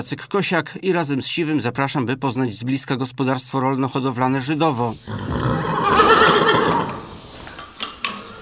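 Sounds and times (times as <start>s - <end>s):
speech: 0.0s - 6.2s
grey 19-year-old horse neighing at a farm in Żydowo, Poland: 5.0s - 7.2s
faint clinks and light knocks: 7.4s - 8.4s.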